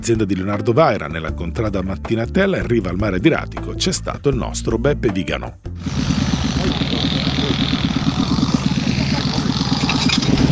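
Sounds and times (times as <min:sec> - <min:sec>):
speech: 0:00.0 - 0:07.7
tractor engine driving an air compressor on a farm in Foggia province: 0:05.7 - 0:10.5.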